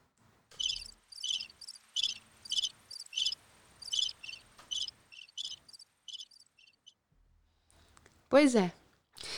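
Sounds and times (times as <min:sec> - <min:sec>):
crickets chirping in short high-pitched pulses: 0:00.6 - 0:06.8
speech: 0:08.3 - 0:08.8.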